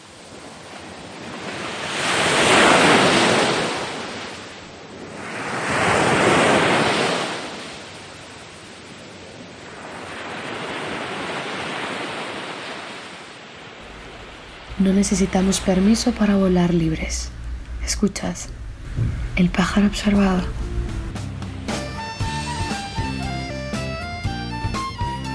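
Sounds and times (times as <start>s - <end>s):
ocean waves breaking on the shore: 0.0s - 24.2s
speech: 14.8s - 20.6s.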